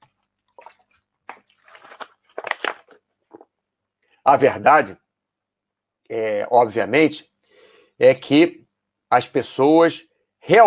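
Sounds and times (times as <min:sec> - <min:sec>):
person drinking water with gulps and swallowing: 0:00.5 - 0:03.6
speech: 0:04.3 - 0:05.0, 0:06.1 - 0:07.3, 0:08.0 - 0:10.6.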